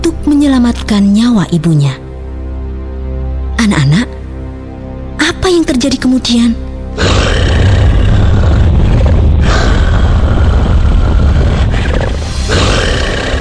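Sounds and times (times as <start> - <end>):
speech: 0.4 - 2.0, 3.6 - 4.2, 5.4 - 7.4
loud deep rumbling roar at the top of a mountain: 7.0 - 13.3.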